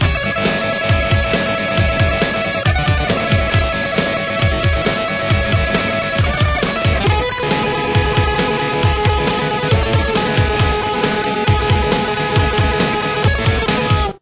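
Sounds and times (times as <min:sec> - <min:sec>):
solo guitar: 0:00.0 - 0:14.1.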